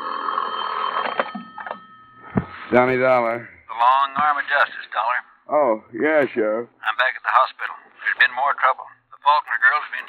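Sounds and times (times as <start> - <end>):
telephone bell ringing with a metallic trill: 0.0 - 2.4
speech: 2.7 - 10.0.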